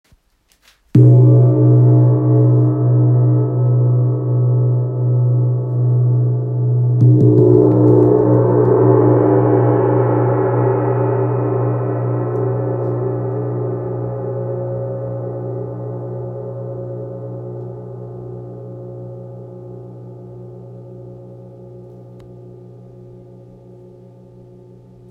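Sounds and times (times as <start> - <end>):
55cm wind gong in C sharp: 1.0 - 18.0.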